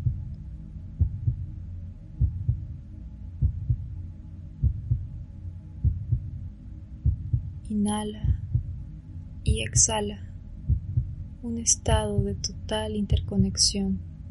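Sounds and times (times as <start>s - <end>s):
heartbeat: 0.0s - 0.4s, 1.0s - 1.6s, 2.2s - 2.8s, 3.4s - 4.0s, 4.6s - 5.2s, 5.8s - 8.9s, 9.5s - 14.2s
soft hum: 0.0s - 14.2s
speech: 7.7s - 8.4s, 9.5s - 10.3s, 11.4s - 14.1s.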